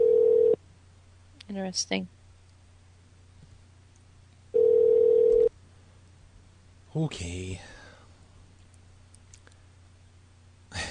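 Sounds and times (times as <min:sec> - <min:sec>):
home telephone ringing with a steady electronic tone: 0:00.0 - 0:00.6, 0:04.5 - 0:05.5
faint hum: 0:00.0 - 0:10.8
speech: 0:01.6 - 0:02.2, 0:07.0 - 0:07.8.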